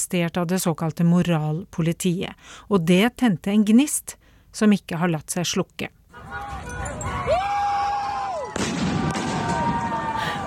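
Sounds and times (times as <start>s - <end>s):
speech: 0.0s - 6.5s
crowd of young protesters shouting and chanting: 6.1s - 10.4s.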